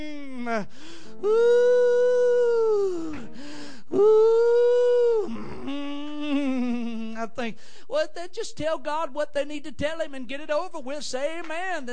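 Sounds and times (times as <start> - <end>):
speech: 0.0 - 2.1, 7.2 - 11.9
preacher imitating the groaning of old folks at prayer: 0.0 - 7.2
short breaths: 0.6 - 1.3, 3.0 - 4.0, 7.5 - 7.9.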